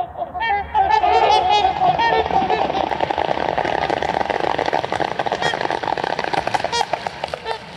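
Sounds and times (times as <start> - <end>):
trumpeter swans honking while taking off from water: 0.0 - 3.0, 6.3 - 7.7
trumpeter swans' wings and feet splashing water while taking off: 1.1 - 7.7.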